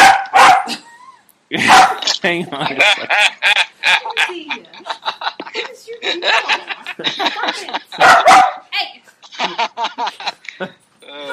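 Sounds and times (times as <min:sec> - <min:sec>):
puppy barking and yipping: 0:00.0 - 0:00.7, 0:01.6 - 0:02.1, 0:08.0 - 0:08.6
laughter: 0:01.5 - 0:08.2, 0:09.2 - 0:11.3
speech: 0:01.5 - 0:11.3.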